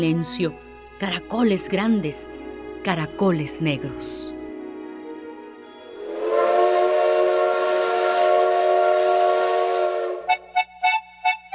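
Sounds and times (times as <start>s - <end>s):
speech: 0.0s - 4.4s
steam train whistle blowing: 6.0s - 11.0s.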